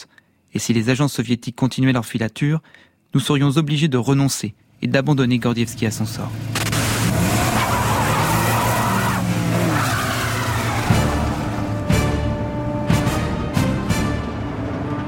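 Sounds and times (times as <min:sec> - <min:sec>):
speech: 0:00.5 - 0:07.4
car engine roaring during a chase through fir forest toward a border post: 0:05.5 - 0:15.0
car tires squealing during a chase on a paved road: 0:06.3 - 0:12.9.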